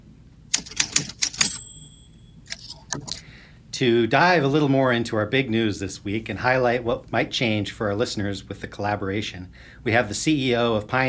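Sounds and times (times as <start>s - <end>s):
typewriter key strikes clattering: 0.5s - 1.9s, 2.5s - 3.2s
typewriter carriage bell ringing: 0.5s - 3.1s
speech: 3.8s - 11.0s.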